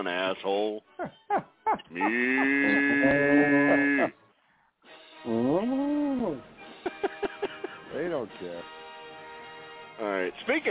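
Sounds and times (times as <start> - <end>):
speech: 0.0 - 4.2, 5.2 - 7.2, 8.0 - 8.8, 10.0 - 10.6
laughter: 1.3 - 4.2, 6.7 - 8.0
cow mooing: 1.9 - 4.2.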